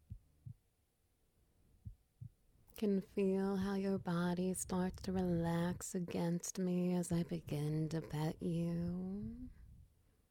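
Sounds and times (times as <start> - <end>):
heartbeat heard through a person's chest: 0.0 - 0.7, 1.8 - 2.5, 3.2 - 9.9
quiet hum: 0.0 - 10.3
speech: 2.8 - 9.6.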